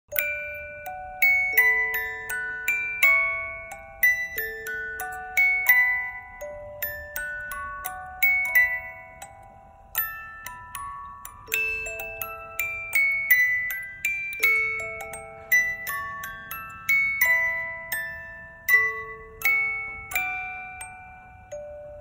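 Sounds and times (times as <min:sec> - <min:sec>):
music box: 0:00.1 - 0:22.0.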